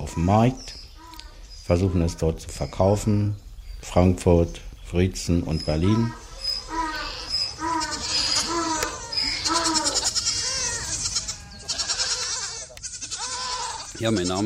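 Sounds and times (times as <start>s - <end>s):
insects or birds chirping: 0.0s - 14.4s
speech: 0.1s - 0.8s, 1.7s - 6.2s, 14.0s - 14.4s
White German goats bleating on a goat farm in Zollrücke Germany: 5.8s - 14.4s.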